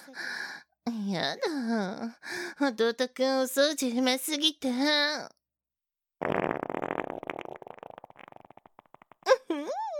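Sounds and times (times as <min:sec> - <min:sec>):
speech: 0:00.1 - 0:05.4, 0:06.2 - 0:06.5
long loud sputtering fart: 0:06.2 - 0:09.5.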